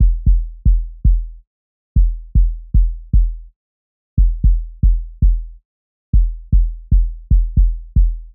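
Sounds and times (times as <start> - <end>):
sub kick drum: 0.0 - 1.4, 2.0 - 3.5, 4.2 - 5.6, 6.2 - 8.3.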